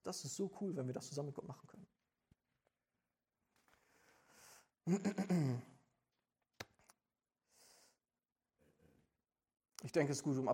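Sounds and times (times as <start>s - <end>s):
speech: 0.0s - 2.0s, 4.8s - 5.7s, 9.8s - 10.5s
soft breath: 3.7s - 4.7s, 7.4s - 8.0s
person clearing throat: 4.9s - 5.8s.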